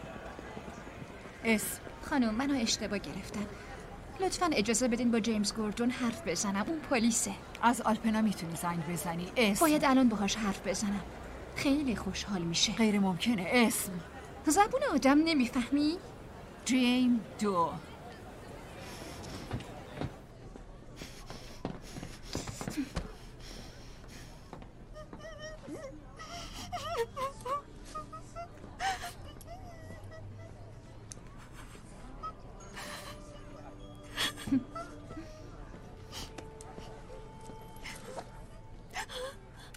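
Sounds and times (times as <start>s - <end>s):
speech: 1.4s - 17.9s
person crying and whimpering with gasping breaths and moans: 24.9s - 30.7s, 31.4s - 37.2s, 37.8s - 39.6s.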